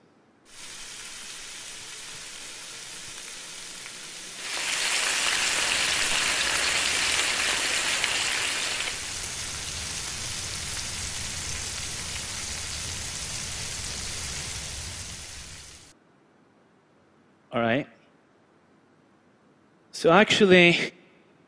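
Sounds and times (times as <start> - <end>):
bacon sizzling and crackling in a pan: 0.5 - 15.9
speech: 20.0 - 21.0.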